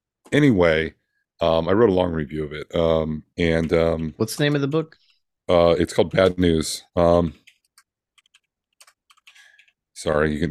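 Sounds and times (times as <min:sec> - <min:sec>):
speech: 0:00.3 - 0:07.4, 0:10.0 - 0:10.4
typing on a computer keyboard: 0:07.4 - 0:09.8.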